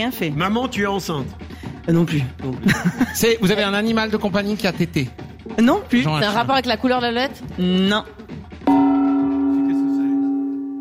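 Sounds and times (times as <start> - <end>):
speech: 0.0 - 8.8
gong struck once and ringing: 8.7 - 10.8.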